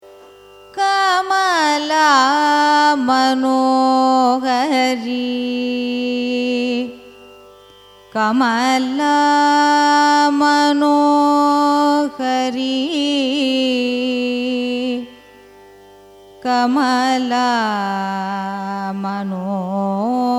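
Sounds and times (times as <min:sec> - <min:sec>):
carnatic raga music: 0:00.0 - 0:20.3.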